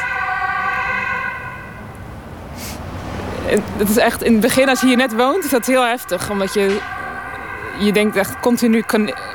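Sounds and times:
ambulance siren passing in the street: 0.0s - 9.3s
low rumble of street traffic: 0.4s - 9.3s
speech: 3.5s - 7.0s, 7.8s - 9.3s.

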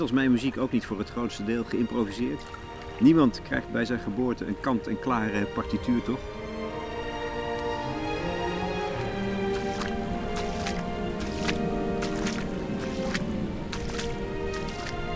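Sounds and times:
speech: 0.0s - 6.4s
irregular lapping river splashes on a small beach: 0.0s - 15.1s
strong river current washing against a small beach in Holland: 1.8s - 4.3s, 5.7s - 15.1s.

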